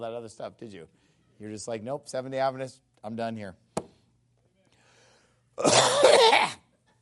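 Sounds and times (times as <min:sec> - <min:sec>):
speech: 0:00.0 - 0:03.6, 0:05.6 - 0:06.0
harsh raspy cough with a throaty rattle: 0:05.6 - 0:06.7.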